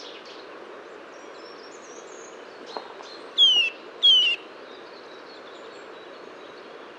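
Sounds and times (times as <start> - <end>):
Eurasian nuthatch Sitta europaea whistled calls: 3.4 - 4.4.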